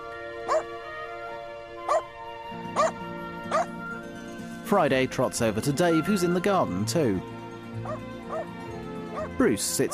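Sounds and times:
dog barking in short sharp yaps: 0.5s - 0.7s, 1.9s - 2.1s, 2.8s - 3.7s, 7.8s - 8.5s, 9.1s - 9.3s
speech: 4.7s - 8.1s, 9.4s - 9.9s.

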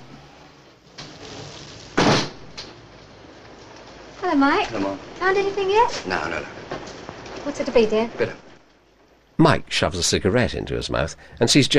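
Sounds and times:
ornate frosted glass pub door opening: 0.0s - 4.1s
speech: 4.2s - 6.8s, 7.4s - 8.4s, 9.4s - 11.7s.

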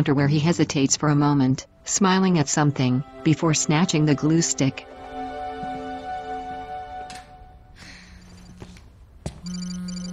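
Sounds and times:
speech: 0.0s - 5.0s
phone ringing with an electronic tone: 9.4s - 10.1s.

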